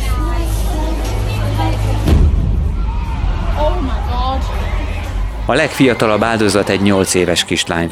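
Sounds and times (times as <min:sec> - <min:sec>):
large indoor crowd shouting: 0:00.0 - 0:07.9
bomb explosion at a concert: 0:02.0 - 0:04.8
speech: 0:05.5 - 0:07.9.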